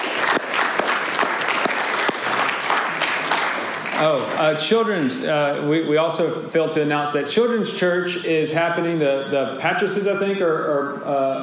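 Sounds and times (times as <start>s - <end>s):
room full of people applauding: 0.0s - 4.6s
speech: 4.0s - 11.4s.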